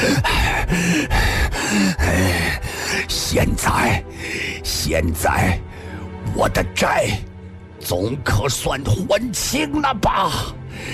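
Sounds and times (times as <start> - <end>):
man stabbed in the chest panting and groaning: 0.0 - 4.6
speech: 3.3 - 10.9.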